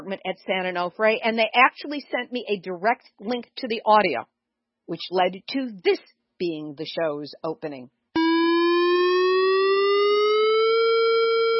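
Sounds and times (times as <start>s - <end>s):
speech: 0.1s - 4.3s, 4.9s - 8.0s
nuclear power plant warning siren: 8.2s - 11.5s.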